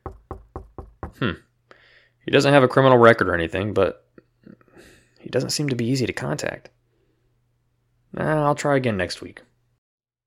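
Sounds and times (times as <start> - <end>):
knocking on an apartment door: 0.0 - 1.2
speech: 1.2 - 1.5, 2.3 - 4.0, 4.8 - 6.8, 8.1 - 9.5.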